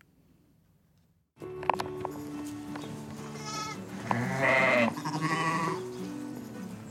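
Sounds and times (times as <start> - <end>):
sheep grazing and wandering with low rustling: 1.4 - 6.9
sheep bleating on green grassland in the Faroe Islands: 3.3 - 5.9.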